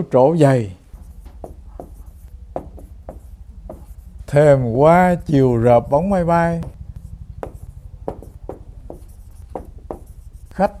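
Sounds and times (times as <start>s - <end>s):
speech: 0.0s - 0.8s, 4.3s - 6.8s, 10.6s - 10.7s
faint low hum: 0.0s - 10.7s
pen scratching across paper copying out a translation: 0.9s - 4.3s, 7.0s - 10.7s.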